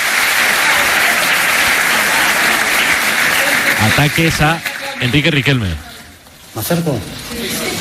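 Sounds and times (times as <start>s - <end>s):
large audience applauding: 0.0s - 5.8s
speech: 4.0s - 5.9s, 6.6s - 7.7s.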